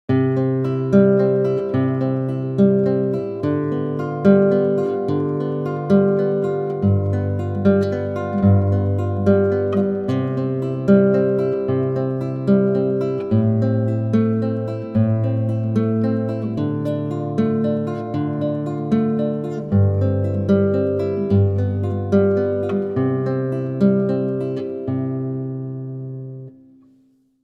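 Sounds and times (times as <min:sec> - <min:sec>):
guitar arpeggio: 0:00.1 - 0:27.0.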